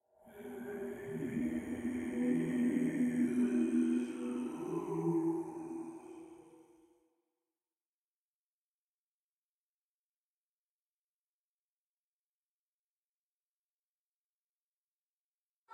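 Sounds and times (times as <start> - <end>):
vocal loop: 0.4 - 6.4.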